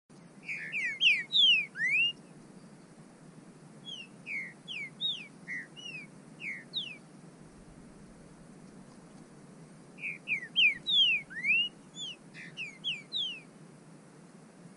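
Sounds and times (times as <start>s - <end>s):
soft hiss: 0.1s - 14.7s
bird calls of high slurred whistles: 0.4s - 2.3s, 3.8s - 7.0s, 10.0s - 13.5s.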